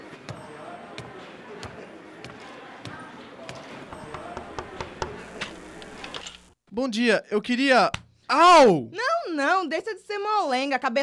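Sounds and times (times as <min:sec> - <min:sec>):
low murmur of voices: 0:00.0 - 0:06.3
knocking on a door: 0:04.0 - 0:05.2
speech: 0:06.8 - 0:11.0.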